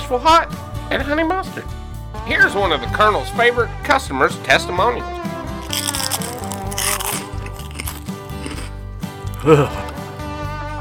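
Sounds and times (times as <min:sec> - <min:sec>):
steady music: 0:00.0 - 0:10.7
speech: 0:00.1 - 0:05.4, 0:09.4 - 0:09.8
crisp crunches of someone biting into fried chicken: 0:05.6 - 0:10.0.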